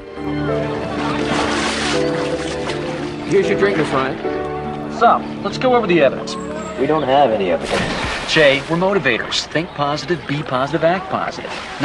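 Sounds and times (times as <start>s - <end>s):
woman swimming through a swimming pool with splashing: 0.7s - 3.3s, 7.6s - 9.4s, 11.3s - 11.8s
speech: 3.3s - 4.3s, 5.0s - 11.8s.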